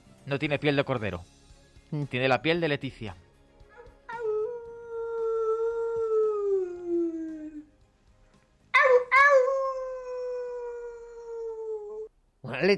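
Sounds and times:
speech: 0.3 - 3.2, 12.6 - 12.7
person imitating a wolf howl: 4.1 - 7.7, 8.8 - 12.1.

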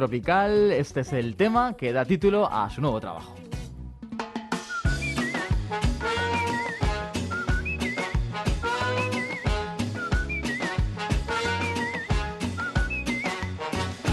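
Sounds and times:
speech: 0.0 - 3.5
full rhythmic band arrangement: 4.2 - 14.1
bright bird-like whistled phrases: 4.6 - 13.6.

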